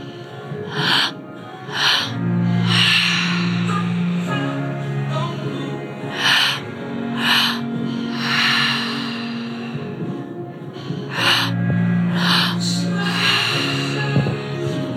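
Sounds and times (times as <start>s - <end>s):
heavy breathing through an open mouth: 0.0s - 14.8s.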